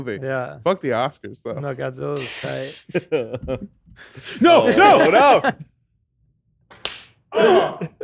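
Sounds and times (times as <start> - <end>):
speech: 0.0 - 5.7, 7.3 - 8.0
laughter: 2.5 - 5.7, 7.4 - 8.0
hand slapping skin: 6.7 - 7.2.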